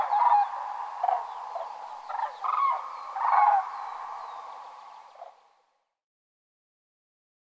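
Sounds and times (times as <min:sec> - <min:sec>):
common cranes bugling on spring migration in Finland: 0:00.0 - 0:05.3
steady background noise: 0:00.0 - 0:05.4.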